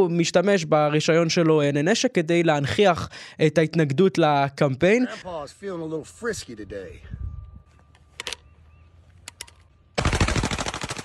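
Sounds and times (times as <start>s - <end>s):
speech: 0.0s - 7.2s
isolated sharp gunshots: 10.0s - 11.0s
rapid automatic gunfire: 10.0s - 11.0s.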